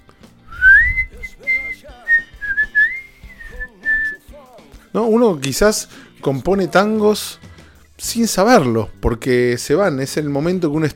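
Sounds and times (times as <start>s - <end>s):
person whistling a short flowing tune: 0.4s - 4.3s
speech: 5.0s - 10.9s.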